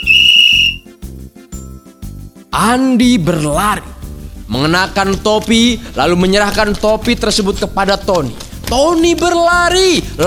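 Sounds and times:
short bursts of lower buzzing sound: 0:00.0 - 0:00.8
shrill whistle blast at a children's relay race: 0:00.0 - 0:01.0
speech: 0:02.6 - 0:03.9, 0:04.5 - 0:10.2.

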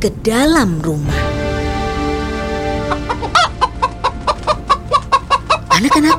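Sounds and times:
speech: 0:00.0 - 0:01.4, 0:05.8 - 0:06.1
brooding hen clucking angrily: 0:02.7 - 0:06.1.

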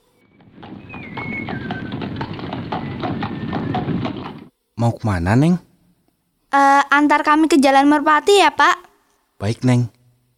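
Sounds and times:
hooves of a horse pulling a delman carriage clip-clopping: 0:00.0 - 0:04.5
rumbling ground noise: 0:00.2 - 0:04.5
speech: 0:04.8 - 0:05.7, 0:06.5 - 0:08.8, 0:09.4 - 0:10.0.

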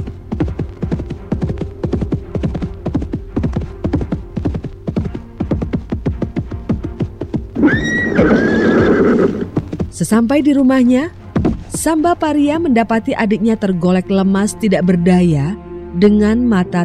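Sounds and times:
hoofbeats of a ridden horse clip-clopping: 0:00.0 - 0:12.2
horse neighing: 0:07.6 - 0:09.7
speech: 0:10.0 - 0:11.2, 0:11.8 - 0:16.8.

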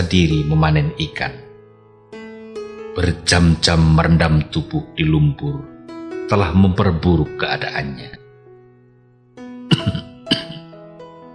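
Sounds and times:
speech: 0:00.0 - 0:01.4, 0:03.0 - 0:05.7, 0:06.3 - 0:08.2
man's raspy asthmatic coughing fit: 0:09.7 - 0:10.7.

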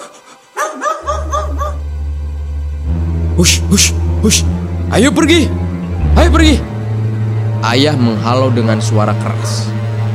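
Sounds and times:
puppy yipping and whining: 0:00.6 - 0:01.8
low droning hum: 0:01.2 - 0:07.6
speech: 0:03.4 - 0:06.7, 0:07.6 - 0:09.8.

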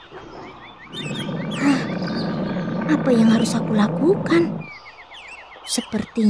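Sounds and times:
tigers roaring and growling: 0:00.0 - 0:04.8
speech: 0:02.9 - 0:04.6, 0:05.7 - 0:06.2.

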